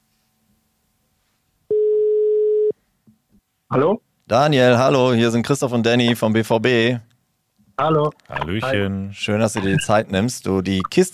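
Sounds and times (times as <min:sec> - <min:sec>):
telephone ringback tone while a call is being placed: 0:01.7 - 0:02.7
speech: 0:03.7 - 0:07.1, 0:07.8 - 0:11.1.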